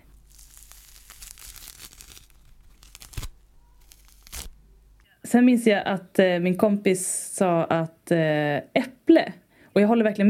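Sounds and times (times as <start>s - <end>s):
peeling a clementine with fibrous tearing and crinkling: 0.0s - 5.0s
speech: 5.3s - 10.2s.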